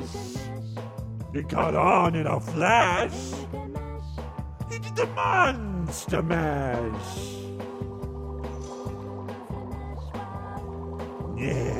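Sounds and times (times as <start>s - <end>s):
speech: 1.3s - 3.6s, 5.0s - 7.4s, 11.4s - 11.7s
thick gloopy ooze bubbling with wet pops and squelches: 7.4s - 11.7s.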